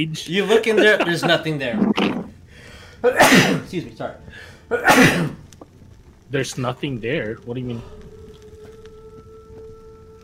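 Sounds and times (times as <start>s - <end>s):
speech: 0.0s - 2.2s, 3.0s - 5.4s, 6.3s - 8.0s
laughter: 0.4s - 1.7s
person sneezing: 3.1s - 3.6s, 4.7s - 5.4s.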